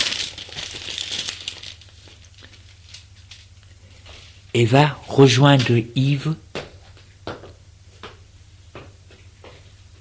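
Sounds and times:
paper envelope rustling and crinkling as it is closed: 0.0 - 4.0
speech: 4.6 - 6.4.

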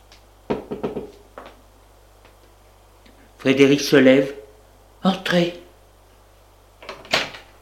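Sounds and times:
knocking on a door: 0.5 - 1.1
speech: 3.4 - 4.4, 5.0 - 5.6.

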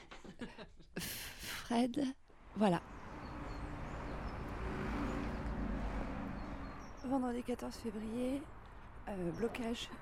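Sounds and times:
speech: 0.4 - 1.0, 1.7 - 3.0, 7.1 - 9.9
low rumble of traffic on a street in Nantes France: 2.2 - 9.9.

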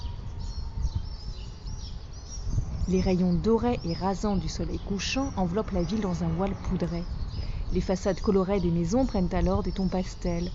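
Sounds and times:
low rumble of wind blowing through narrow streets: 0.0 - 10.5
swallows chirping at dusk in Cádiz Spain: 0.0 - 10.5
speech: 2.9 - 10.5.

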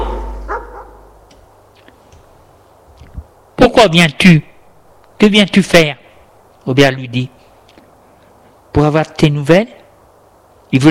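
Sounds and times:
dog barking: 0.0 - 1.1
low steady hum: 0.0 - 10.8
speech: 3.8 - 4.5, 5.2 - 6.0, 6.6 - 7.4, 8.8 - 9.8.

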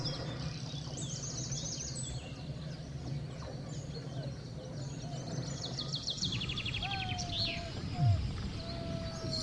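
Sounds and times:
dense chorus of wild birds chirping and trilling: 0.0 - 9.4
steady low outdoor hum: 0.0 - 9.4
clear descending bird whistles: 6.5 - 9.4.

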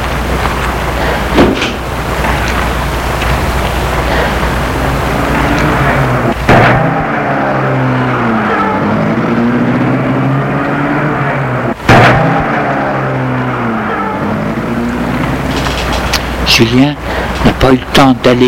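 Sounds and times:
car engine revving as the car pulls away: 0.0 - 17.4
rushing outdoor noise: 0.0 - 18.4
sharp bang: 5.8 - 8.9, 11.2 - 14.9
speech: 16.6 - 18.4.

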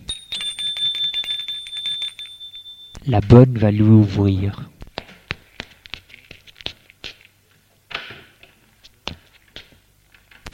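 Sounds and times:
apartment doorbell ringing in an electric trill: 0.0 - 3.1
speech: 3.0 - 4.7.

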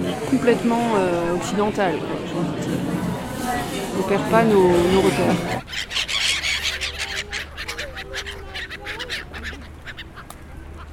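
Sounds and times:
steady outdoor rumble: 0.0 - 10.9
speech: 0.3 - 6.0
seagulls squabbling over pieces of bread by ponds on a chilly day: 4.4 - 10.9.

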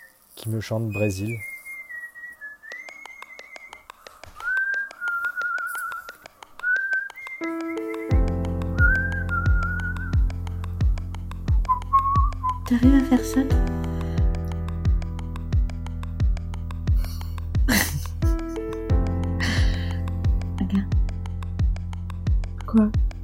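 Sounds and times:
speech: 0.4 - 1.5, 12.8 - 13.8
person whistling a lively wavering melody: 0.8 - 10.4, 11.5 - 13.1
deep rhythmic instrumental accompaniment: 6.0 - 23.2.

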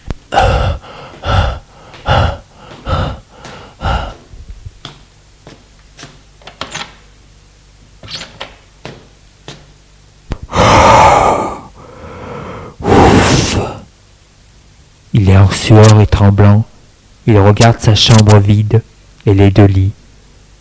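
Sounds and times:
man panting heavily out of breath: 0.3 - 4.4, 10.5 - 13.8
speech: 15.4 - 16.7, 17.3 - 20.0.

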